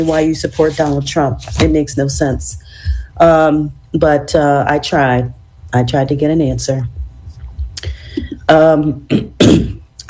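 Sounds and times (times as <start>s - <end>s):
speech: 0.0s - 7.0s, 7.8s - 10.0s
person with a sore throat coughing into a microphone: 9.1s - 9.8s.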